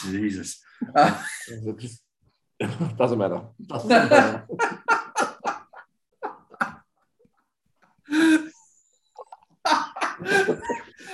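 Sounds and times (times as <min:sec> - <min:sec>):
speech: 0:00.0 - 0:02.0, 0:02.6 - 0:04.8
laughter: 0:00.8 - 0:01.7, 0:03.7 - 0:07.0, 0:09.2 - 0:11.1
man choking and sputtering on a drink: 0:09.2 - 0:09.6.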